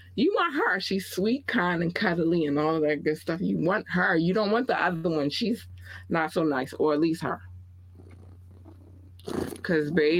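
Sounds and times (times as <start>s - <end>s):
speech: 0.2s - 7.5s, 9.2s - 10.1s
person vocally imitating a cat's purr: 8.0s - 9.7s.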